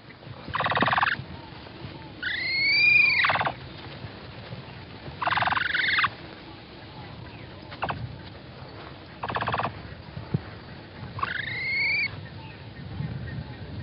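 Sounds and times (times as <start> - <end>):
capybara rising-and-falling whistled squeal with harmonics: 0.5 - 1.2, 2.2 - 3.6, 5.2 - 6.1, 9.2 - 9.7, 11.2 - 12.2.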